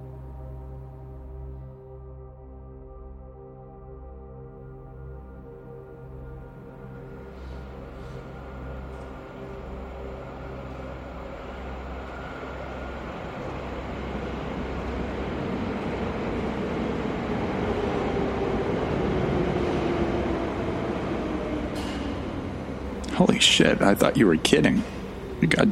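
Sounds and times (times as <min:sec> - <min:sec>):
train arriving at station with deep mechanical roar: 0:06.0 - 0:25.7
speech: 0:23.4 - 0:25.0.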